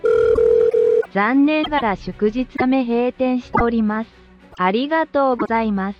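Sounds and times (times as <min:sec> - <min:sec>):
telephone ring tone: 0:00.0 - 0:01.1
recorded voice speaking over a phone line like an automated answering message: 0:01.0 - 0:05.9.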